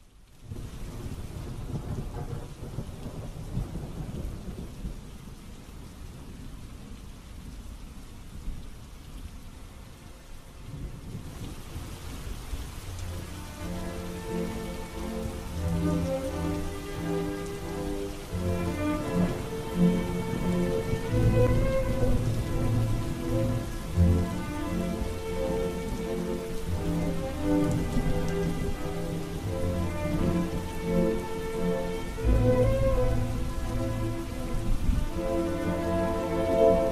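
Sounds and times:
steady rain pattering outside at night: 0.0s - 36.8s
low rumbles of thunder: 0.4s - 7.6s, 10.6s - 36.8s
soft melody: 12.9s - 36.8s.

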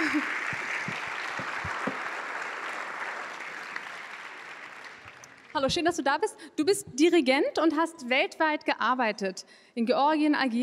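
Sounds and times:
audience applause at an entrepreneurship summit: 0.0s - 5.6s
speech: 5.6s - 10.6s.

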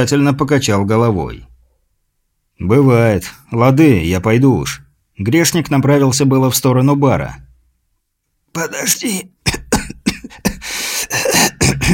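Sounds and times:
speech: 0.0s - 1.5s, 2.6s - 7.5s, 8.5s - 9.6s
man coughing up phlegm: 9.4s - 11.9s.

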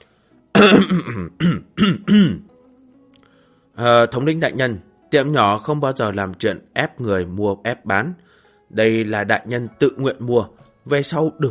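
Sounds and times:
speech: 0.6s - 1.5s, 3.8s - 11.4s
man clearing his throat: 0.6s - 2.5s.

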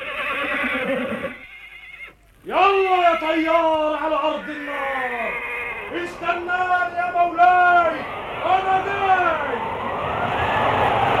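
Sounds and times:
flying horse whinny: 0.0s - 2.2s, 4.5s - 6.0s
speech: 2.5s - 11.1s.

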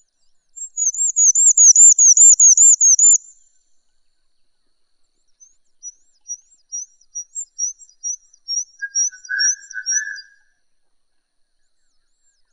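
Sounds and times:
bird whistling song: 0.6s - 3.3s, 5.8s - 10.5s
thin chirps: 0.6s - 3.4s, 6.2s - 10.4s.

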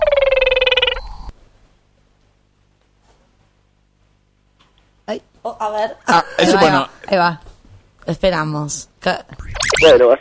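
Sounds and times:
small Brazilian frog call, played from a recording: 0.0s - 1.3s
speech: 5.1s - 10.1s.

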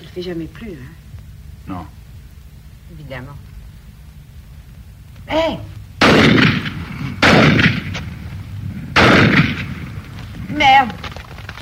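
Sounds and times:
speech: 0.2s - 1.0s, 1.6s - 2.0s, 2.9s - 3.5s, 5.3s - 5.8s, 10.5s - 11.1s
shotgun blasts fired during a duck hunt: 6.0s - 11.1s.

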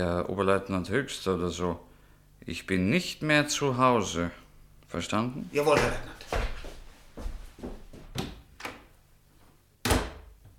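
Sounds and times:
speech: 0.0s - 6.4s
wooden door being closed: 9.8s - 10.4s.

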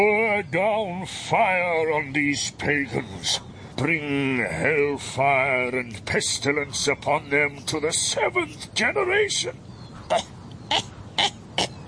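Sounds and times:
speech: 0.0s - 10.9s
short rough coughs or throat-clearing: 10.1s - 11.8s.

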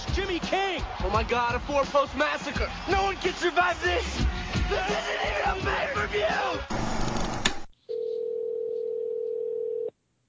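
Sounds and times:
speech: 0.2s - 7.1s
telephone ringing with an electronic tone: 7.9s - 9.9s.

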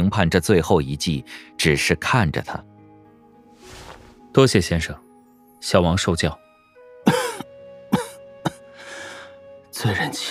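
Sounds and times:
speech: 0.0s - 2.7s, 4.4s - 6.4s, 9.8s - 10.2s
man coughing dry coughs: 7.0s - 8.6s.

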